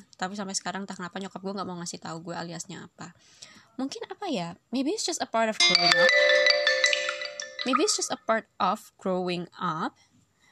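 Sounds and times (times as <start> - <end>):
speech: 0.2 - 6.5, 7.6 - 10.1
mobile phone notification chime: 5.6 - 8.1.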